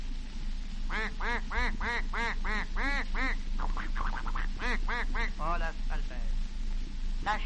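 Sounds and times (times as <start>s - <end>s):
low constant hum: 0.0s - 7.4s
duck quacking: 0.9s - 5.4s
speech: 1.0s - 6.4s, 7.2s - 7.4s.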